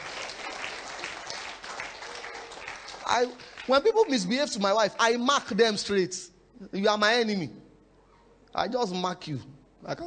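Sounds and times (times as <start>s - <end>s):
crowd clapping: 0.0s - 4.8s
speech: 3.1s - 7.6s, 8.5s - 10.0s.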